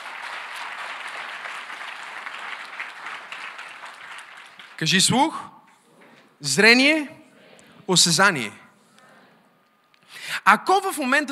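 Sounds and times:
congregation applauding in a church: 0.0 - 5.3
speech: 4.8 - 5.6, 6.4 - 7.2, 7.9 - 8.6, 10.4 - 11.3.

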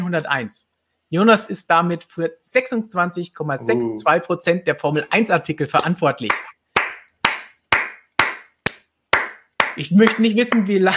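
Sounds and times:
speech: 0.1 - 6.5, 9.8 - 10.9
slow steady hand claps: 5.8 - 10.3.

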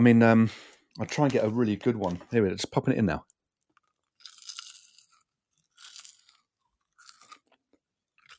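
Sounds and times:
speech: 0.0 - 3.3
person chewing a crunchy snack: 3.6 - 8.3.

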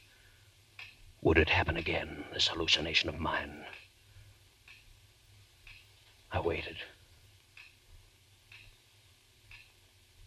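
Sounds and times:
clock ticking softly: 0.7 - 3.9, 4.6 - 5.0, 5.6 - 6.8, 7.4 - 8.8, 9.4 - 9.9
speech: 1.2 - 3.8, 6.3 - 6.9.

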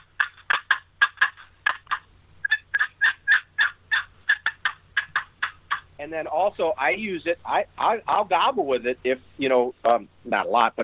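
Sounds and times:
cherry wooden turkey box call playing hen cutting notes: 0.0 - 7.3
speech: 6.0 - 10.8.

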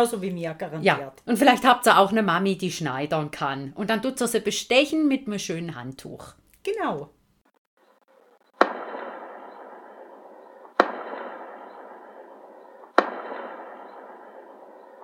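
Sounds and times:
speech: 0.0 - 7.2
ceremonial mortar shots booming with rolling echo: 8.6 - 15.0.

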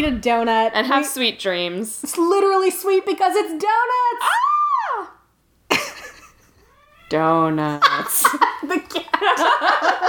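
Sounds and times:
speech: 0.0 - 5.1, 7.1 - 10.0
laughter: 5.7 - 6.7, 7.8 - 10.0
cat meowing: 6.6 - 7.5.

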